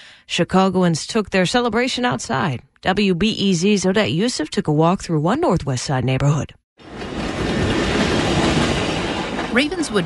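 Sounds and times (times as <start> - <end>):
speech: 0.3 - 7.0, 9.5 - 10.0
commuter train wheels clattering on rails in Ravenswood Manor, Albany Park, Chicago: 6.8 - 10.0.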